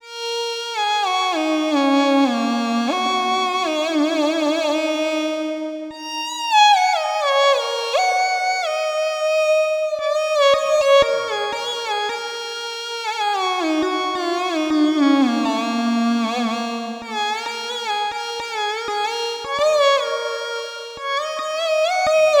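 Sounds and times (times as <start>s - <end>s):
erhu: 0.0s - 22.3s.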